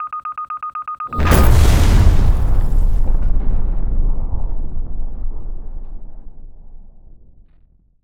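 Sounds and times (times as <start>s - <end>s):
mine beeping: 0.0s - 2.5s
mine explosion: 1.2s - 7.8s.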